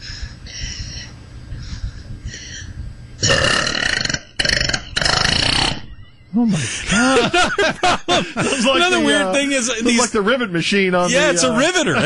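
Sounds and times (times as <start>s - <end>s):
long rattling burp from a girl: 3.2s - 5.8s
laughter: 5.9s - 9.9s
speech: 6.4s - 12.0s.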